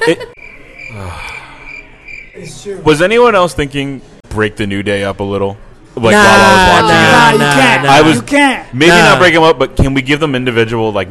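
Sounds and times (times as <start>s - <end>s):
speech: 0.0s - 1.2s, 2.4s - 11.0s
crickets chirping: 0.4s - 2.5s.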